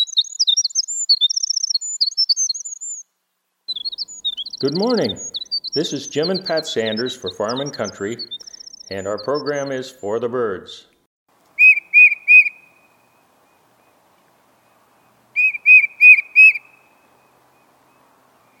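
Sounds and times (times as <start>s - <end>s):
tufted titmouse whistled song: 0.0s - 3.0s, 3.7s - 9.8s, 11.6s - 12.6s, 15.4s - 16.7s
speech: 4.6s - 10.9s.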